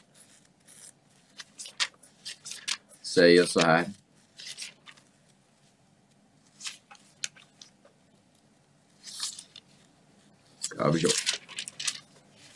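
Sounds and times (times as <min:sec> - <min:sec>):
thin bible paper pages being leafed through: 0:00.0 - 0:05.4, 0:06.5 - 0:07.9, 0:09.0 - 0:09.9, 0:10.6 - 0:12.5
speech: 0:03.2 - 0:04.0, 0:10.9 - 0:11.2.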